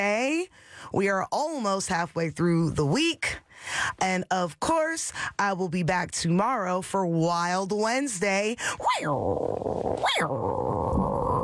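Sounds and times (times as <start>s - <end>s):
speech: 0.0s - 11.2s
man imitating a tiger growl: 8.8s - 11.4s.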